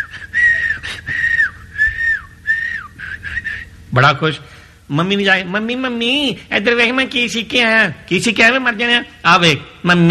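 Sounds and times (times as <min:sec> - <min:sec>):
person whistling a tune: 0:00.0 - 0:03.7
speech: 0:03.9 - 0:10.0.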